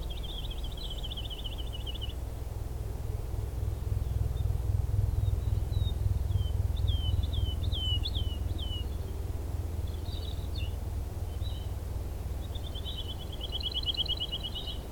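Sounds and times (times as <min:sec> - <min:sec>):
woodlark singing whistled falling slurs along a lower path: 0:00.0 - 0:02.2, 0:05.1 - 0:09.2, 0:09.8 - 0:14.9
persistent deep rumble: 0:00.0 - 0:13.7.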